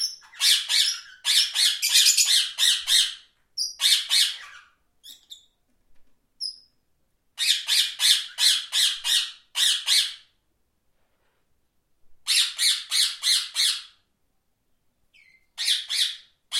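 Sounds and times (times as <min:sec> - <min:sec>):
parrot giving harsh grating squawks: 0:00.0 - 0:05.5, 0:07.4 - 0:10.3, 0:12.2 - 0:14.0, 0:15.2 - 0:16.5.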